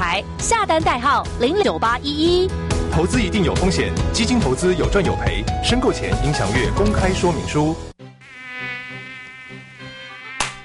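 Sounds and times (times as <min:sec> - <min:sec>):
speech: 0:00.2 - 0:07.9
mosquito buzzing: 0:08.0 - 0:10.6
sharp slap: 0:10.4 - 0:10.6.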